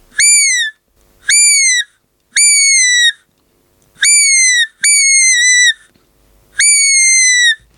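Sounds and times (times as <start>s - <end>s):
3D printed fox caller with T2 black reed: 0.1s - 3.2s, 4.0s - 5.9s, 6.6s - 7.6s.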